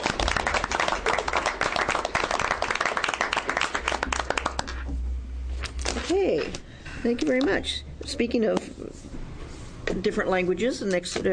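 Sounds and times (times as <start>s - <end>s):
crowd at a meeting applauding: 0.0s - 4.8s
low room hum: 0.0s - 11.3s
speech: 7.0s - 9.1s, 10.0s - 11.3s.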